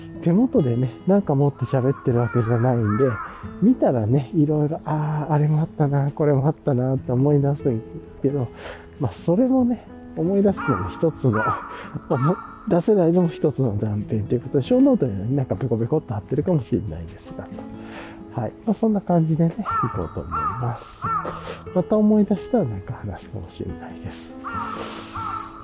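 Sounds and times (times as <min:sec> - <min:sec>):
speech: 0:00.2 - 0:17.8, 0:18.4 - 0:25.0
crow cawing: 0:01.5 - 0:03.6, 0:10.4 - 0:12.8, 0:19.6 - 0:21.7, 0:24.4 - 0:25.6.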